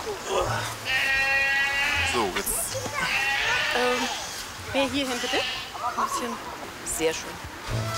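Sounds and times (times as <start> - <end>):
goats bleating: 0.2 - 6.4
speech: 4.7 - 7.9.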